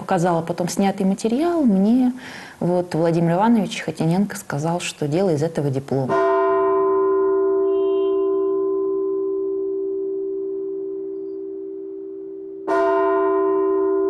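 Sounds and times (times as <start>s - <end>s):
speech: 0.1s - 6.3s
large church bell rung by a bell-ringer: 6.1s - 14.0s.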